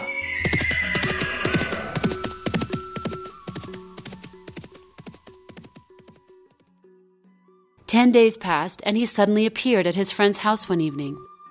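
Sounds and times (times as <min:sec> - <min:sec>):
horse whinnying: 0:00.0 - 0:04.0
horse hooves trotting: 0:00.0 - 0:06.7
speech: 0:07.9 - 0:11.3.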